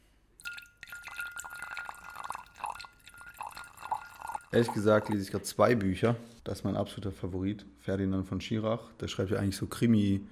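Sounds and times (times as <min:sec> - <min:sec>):
red wine poured into a glass: 0:00.4 - 0:05.4
speech: 0:04.5 - 0:10.2.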